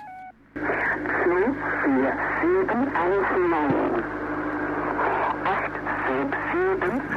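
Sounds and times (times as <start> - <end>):
shortwave numbers station electronic tones forming a rising and falling scale: 0.0 - 0.4
distorted voice reading numbers in German on a shortwave numbers station: 0.0 - 4.1, 4.8 - 7.1
shortwave radio hiss and static: 0.0 - 7.1.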